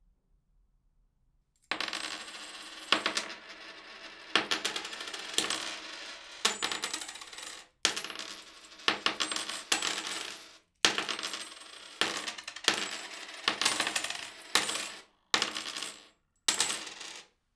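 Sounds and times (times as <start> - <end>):
small change coins tossed onto a table: 1.6 - 17.3.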